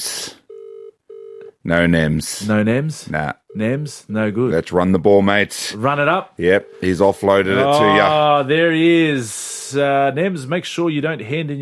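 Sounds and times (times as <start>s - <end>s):
low telephone ringback tone on an outgoing call: 0.5s - 1.5s, 7.6s - 8.1s
speech: 1.6s - 11.6s.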